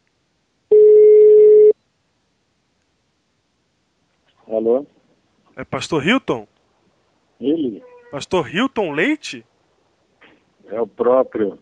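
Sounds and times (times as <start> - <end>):
telephone tone as a call is placed: 0.7 - 1.8
speech: 4.6 - 5.0, 5.6 - 6.5, 7.4 - 9.5, 10.7 - 11.6.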